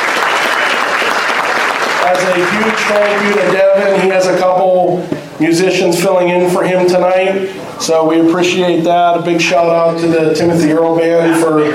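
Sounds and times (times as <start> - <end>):
audience applause for a band: 0.0 - 4.3
speech: 2.1 - 11.7.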